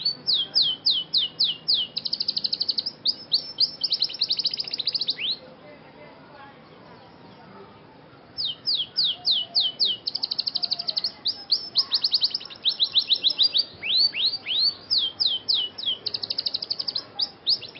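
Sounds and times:
Scotch Fancy canary singing in cengkok mewah style: 0:00.0 - 0:05.6, 0:06.7 - 0:17.7.

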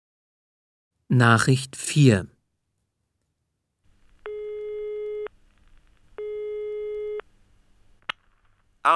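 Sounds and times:
speech: 0:01.1 - 0:02.3
telephone busy signal on a German phone line: 0:04.3 - 0:05.3, 0:06.2 - 0:07.2.

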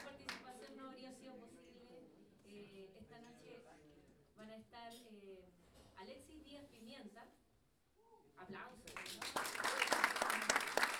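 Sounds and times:
audience applause at a live improvisation performance at a jazz school: 0:08.9 - 0:10.9.

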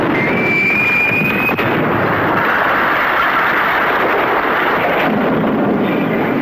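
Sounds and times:
cannon fired at a ship: 0:00.0 - 0:06.3
faint high whistle: 0:00.1 - 0:01.6.

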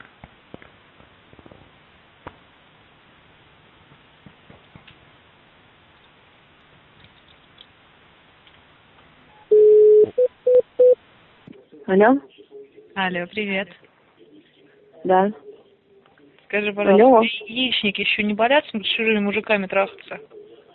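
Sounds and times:
short beeps: 0:09.4 - 0:11.0
steady telephone tone: 0:09.4 - 0:11.0
speech: 0:11.9 - 0:12.3, 0:13.0 - 0:13.8, 0:15.1 - 0:15.5, 0:16.5 - 0:20.3.

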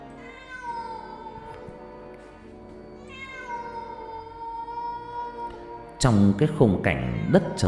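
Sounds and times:
cats yowling eerily in a bush at night: 0:00.0 - 0:01.8, 0:03.0 - 0:06.0
speech: 0:06.0 - 0:07.6.

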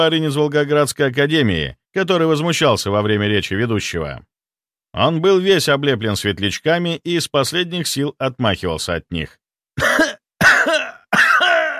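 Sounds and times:
speech: 0:00.0 - 0:04.3, 0:04.9 - 0:09.9
man coughing up blood: 0:09.8 - 0:11.7.

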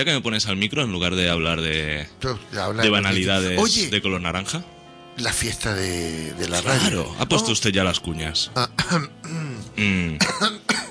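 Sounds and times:
speech: 0:00.0 - 0:10.9
man coughing: 0:08.8 - 0:10.9.

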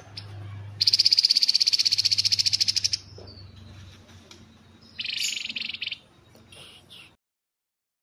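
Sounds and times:
Streaked spiderhunter giving chattering rattles: 0:00.2 - 0:06.1.

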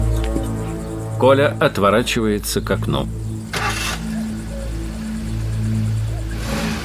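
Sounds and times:
speech: 0:01.2 - 0:03.2
car pulling away on a dusty road: 0:03.4 - 0:06.8.

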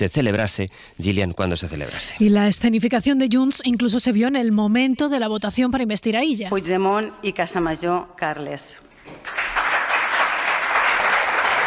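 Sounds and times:
speech: 0:00.0 - 0:09.4
deputies applauding in parliament during an investiture vote: 0:09.1 - 0:11.6.

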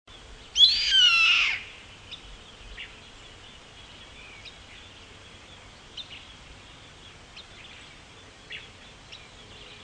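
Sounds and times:
yellow-headed caracara screeching: 0:00.6 - 0:01.7.

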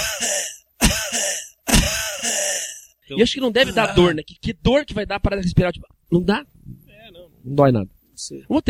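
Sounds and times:
small raspy coughs: 0:00.0 - 0:02.9
speech: 0:03.1 - 0:08.6.

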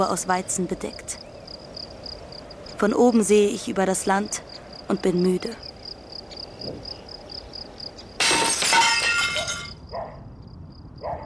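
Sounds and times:
speech: 0:00.0 - 0:01.3, 0:02.8 - 0:05.6, 0:06.6 - 0:06.9
faint crickets chirping: 0:00.0 - 0:11.2
stone thrown through a small village shop window, glass shattering: 0:08.2 - 0:09.8.

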